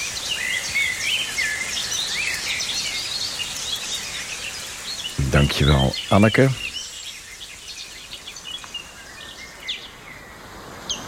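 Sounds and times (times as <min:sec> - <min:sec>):
steady rain falling: 0:00.0 - 0:11.0
garden warbler singing: 0:05.0 - 0:06.9
speech: 0:05.3 - 0:06.6.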